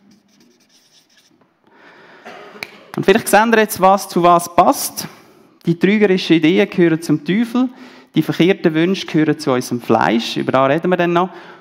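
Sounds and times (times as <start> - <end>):
words written by hand, scratching strokes: 0.0 - 1.4
speech: 3.0 - 11.5.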